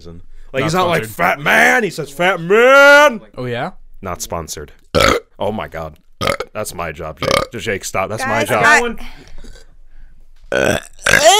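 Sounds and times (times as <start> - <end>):
speech: 0.0 - 9.6, 10.5 - 11.3
loud burps: 4.9 - 5.3, 6.2 - 6.5, 7.2 - 7.5, 10.5 - 11.3.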